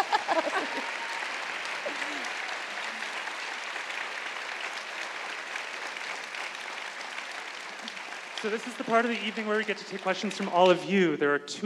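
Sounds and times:
laughter: 0.0s - 3.0s, 7.8s - 10.9s
room full of people clapping for a panel at an evening event: 0.0s - 11.1s
speech: 8.4s - 11.6s.

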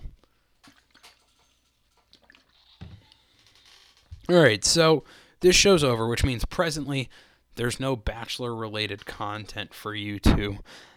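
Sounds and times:
person sipping water: 0.6s - 3.3s
speech: 4.3s - 10.9s.

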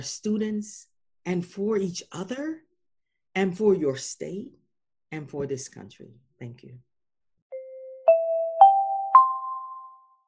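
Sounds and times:
speech: 0.0s - 2.6s, 3.4s - 6.9s
four-note chime opening the morning announcements: 7.5s - 10.2s.

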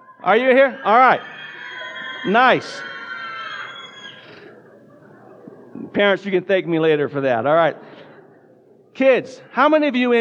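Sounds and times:
crowd of children screaming in a large room: 0.0s - 4.8s
laughter: 0.0s - 6.5s
speech: 0.2s - 1.4s, 2.2s - 2.9s, 6.0s - 7.9s, 9.0s - 10.1s.

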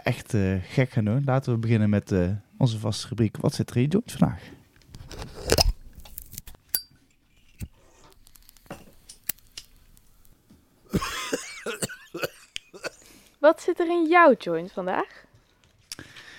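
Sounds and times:
speech: 0.0s - 4.6s, 13.9s - 15.3s
person coughing: 10.9s - 13.1s.

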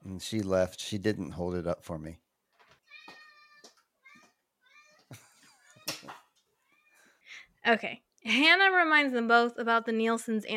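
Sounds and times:
speech: 0.2s - 2.2s, 7.6s - 10.5s
cat meowing: 2.8s - 5.1s.

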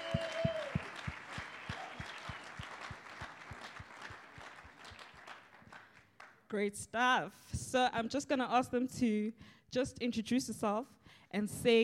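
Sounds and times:
crowd applauding in welcome: 0.0s - 6.4s
speech: 6.5s - 11.8s.

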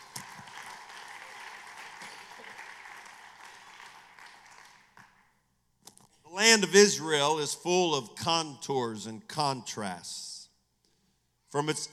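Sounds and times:
crowd applauding in praise to the Lord: 0.0s - 5.3s
speech: 6.4s - 10.3s, 11.5s - 11.9s.

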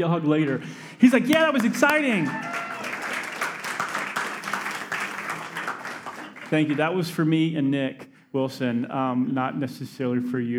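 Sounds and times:
speech: 0.0s - 2.7s, 6.5s - 10.5s
audience clapping: 0.0s - 7.2s.

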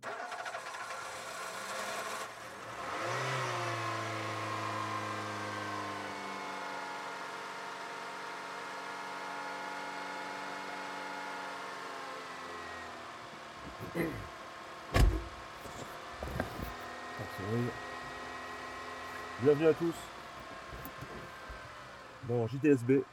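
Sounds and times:
car engine starting and running at a steady drone: 0.0s - 23.1s
sharp clunks and knocks: 14.9s - 16.8s
speech: 19.4s - 20.1s, 22.3s - 23.1s.

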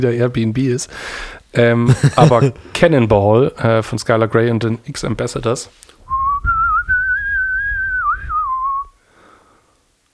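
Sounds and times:
speech: 0.0s - 6.2s
laughter: 1.9s - 2.6s
person whistling a song melody: 6.1s - 9.0s.

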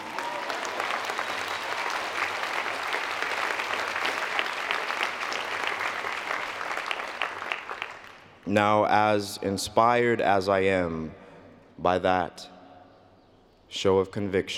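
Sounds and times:
large audience applause: 0.0s - 8.3s
speech: 8.5s - 11.2s, 11.8s - 12.5s, 13.7s - 14.5s.

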